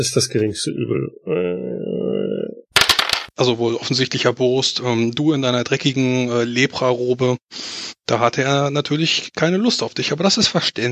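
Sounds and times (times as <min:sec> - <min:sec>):
speech: 0:00.0 - 0:01.7, 0:03.4 - 0:10.9
drawn-out vocal sound: 0:00.7 - 0:02.7
dice clattering across a hard surface: 0:02.8 - 0:03.3.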